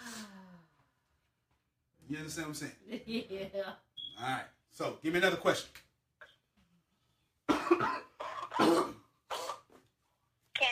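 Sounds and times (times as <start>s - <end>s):
speech: 2.1s - 5.9s
harsh coughs in a coughing fit: 7.5s - 9.8s.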